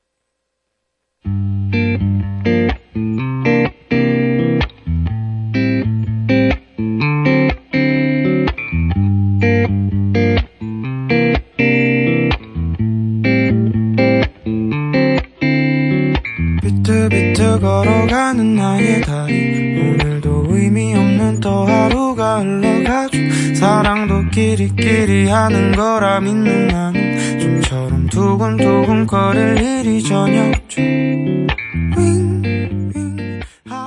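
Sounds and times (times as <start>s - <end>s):
loud distorted electric guitar playing a stop-start riff: 1.2s - 33.8s.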